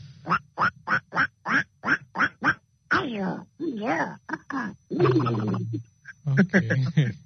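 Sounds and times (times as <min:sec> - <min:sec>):
voice imitating duck quacks: 0:00.3 - 0:03.2
laughter: 0:04.9 - 0:07.2.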